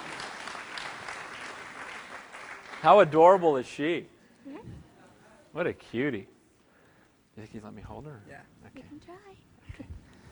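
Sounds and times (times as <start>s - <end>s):
large audience applauding: 0.0s - 3.6s
speech: 2.8s - 4.8s, 5.5s - 6.4s, 7.4s - 10.0s.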